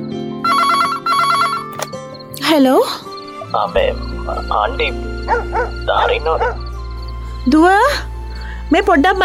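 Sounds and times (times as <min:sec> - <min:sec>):
home landline telephone electronic warbling ring: 0:00.5 - 0:01.9
speech: 0:02.6 - 0:06.6, 0:07.4 - 0:08.1, 0:08.7 - 0:09.2.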